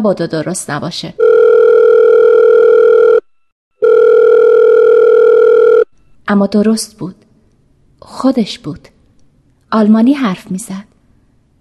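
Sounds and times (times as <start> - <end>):
speech: 0.0 - 1.4, 6.3 - 7.2, 8.1 - 8.9, 9.7 - 10.9
telephone line tone while a number in Germany is dialed: 1.2 - 6.0.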